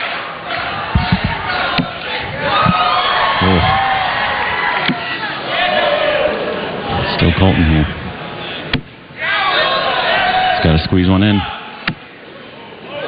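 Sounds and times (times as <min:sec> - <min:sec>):
dense crowd cheering and whooping: 0:00.0 - 0:10.8, 0:12.7 - 0:13.0
sharp thuds and pops: 0:00.8 - 0:02.9
speech: 0:07.4 - 0:08.0, 0:10.7 - 0:11.6.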